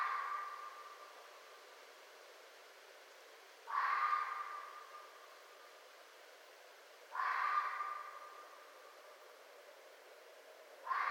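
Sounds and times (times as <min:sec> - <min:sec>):
Red fox giving rasping barks: 0:03.7 - 0:04.8, 0:07.1 - 0:08.4, 0:10.8 - 0:11.0.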